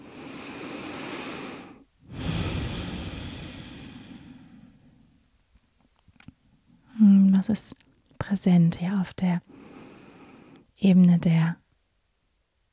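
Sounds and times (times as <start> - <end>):
slow deep breaths during a guided heart-focused meditation: 0.0 - 5.2, 9.5 - 10.7
speech: 7.4 - 9.6, 10.8 - 11.6.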